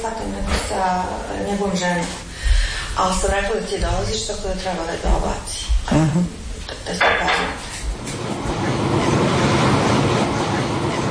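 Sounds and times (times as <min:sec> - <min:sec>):
speech: 0:00.0 - 0:02.3, 0:03.0 - 0:07.7
underground subway train travelling: 0:07.9 - 0:11.0.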